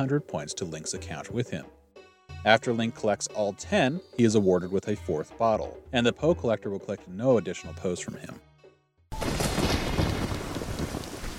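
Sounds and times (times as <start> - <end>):
speech: 0.0 - 1.8, 2.4 - 8.5
deep thunder rumbling over a village: 9.2 - 11.3
loud rain over a village in a storm: 9.2 - 11.3.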